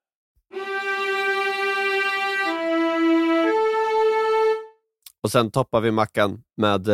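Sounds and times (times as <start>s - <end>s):
viola playing long bowed notes: 0.5s - 4.8s
speech: 5.2s - 6.9s.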